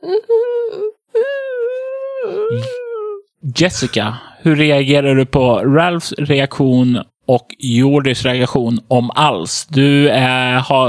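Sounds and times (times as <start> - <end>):
speech: 0.0 - 0.4, 2.5 - 2.8, 3.5 - 10.8
person vocally imitating someone whimpering: 0.0 - 3.3.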